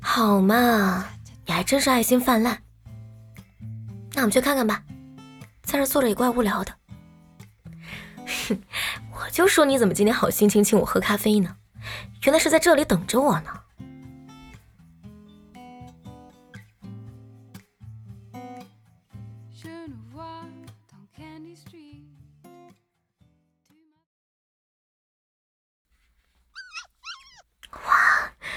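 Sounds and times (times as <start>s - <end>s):
soft music: 0.0s - 16.3s
speech: 0.2s - 2.6s, 4.2s - 4.9s, 5.7s - 6.8s, 8.3s - 13.6s
several dogs yelping and whining: 26.6s - 27.4s.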